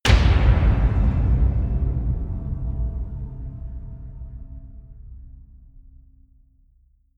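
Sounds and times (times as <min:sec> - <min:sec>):
impact hit: 0:00.0 - 0:06.6.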